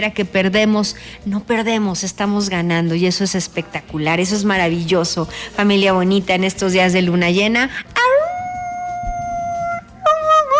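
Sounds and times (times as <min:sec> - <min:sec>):
speech: 0:00.0 - 0:08.0
faint noise: 0:00.0 - 0:10.5
dog howling: 0:08.0 - 0:10.5.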